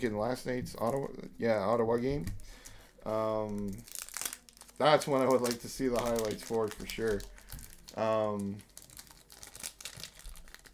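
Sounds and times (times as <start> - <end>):
speech: 0.0 - 4.0, 4.8 - 7.3, 8.0 - 8.7
foil pack of hockey trading cards crinkling and tearing: 3.4 - 10.7.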